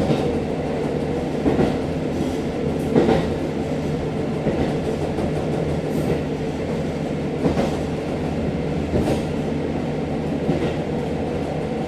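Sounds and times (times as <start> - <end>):
diesel railcar engine drone inside the cabin: 0.0 - 11.8.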